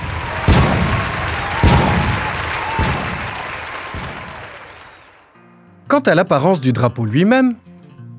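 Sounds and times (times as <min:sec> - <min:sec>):
cannon shots of a 21-gun salute marking Burundi's independence: 0:00.0 - 0:04.6
speech: 0:06.0 - 0:07.7.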